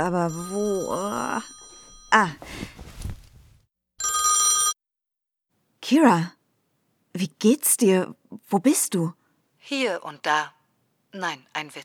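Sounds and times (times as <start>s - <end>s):
telephone ringing with a buzzing electronic trill: 0.0s - 2.5s, 4.0s - 4.8s
speech: 0.0s - 2.9s, 5.9s - 6.4s, 7.2s - 11.8s
rustling and clatter: 1.7s - 3.6s.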